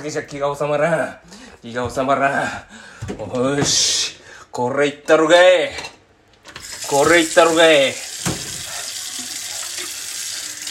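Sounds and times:
speech: 0:00.0 - 0:05.9, 0:06.9 - 0:08.1
faucet water running into a sink: 0:06.6 - 0:10.7.

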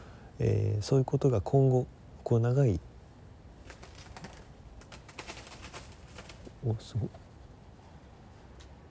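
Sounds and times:
speech: 0:00.4 - 0:02.9, 0:06.6 - 0:07.2
many birds taking off with fluttering wingbeats: 0:03.6 - 0:07.4.

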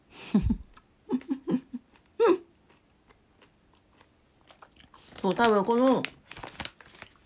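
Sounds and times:
speech: 0:00.3 - 0:00.6, 0:05.2 - 0:06.2
chewing: 0:00.7 - 0:05.3
biting a soft candy with a crunchy coating: 0:01.8 - 0:05.6.

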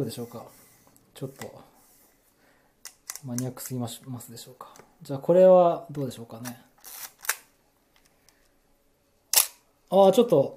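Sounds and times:
speech: 0:00.0 - 0:00.6, 0:01.2 - 0:01.7, 0:03.2 - 0:07.0, 0:09.9 - 0:10.5
Nikon FM3A film SLR titanium-curtain shutter firing without film: 0:09.3 - 0:09.6.

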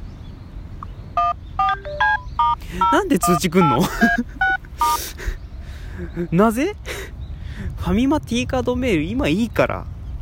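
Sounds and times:
audio data tones for a Tone Connect service: 0:00.8 - 0:05.2
speech: 0:02.7 - 0:05.3, 0:06.0 - 0:06.9, 0:07.8 - 0:09.9
laughter: 0:03.6 - 0:06.3.

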